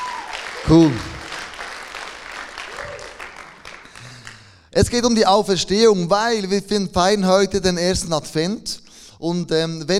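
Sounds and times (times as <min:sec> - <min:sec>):
faint voices and whoops in the crowd: 0:00.0 - 0:00.7, 0:02.7 - 0:03.2
church audience applauding: 0:00.0 - 0:04.6
speech: 0:00.6 - 0:01.1, 0:04.8 - 0:09.9.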